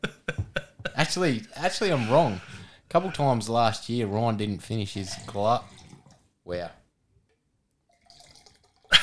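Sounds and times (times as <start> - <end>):
speech: 1.0 - 5.7, 6.5 - 6.8
liquid pouring into a glass: 4.9 - 6.2, 7.9 - 9.0.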